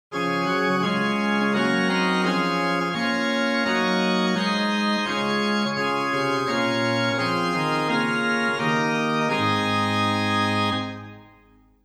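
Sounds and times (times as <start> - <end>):
middle-sized Silbermann church organ with Gedackt Rohrflöte Nassat Octava Zymbeln stops: 0.1 - 11.7.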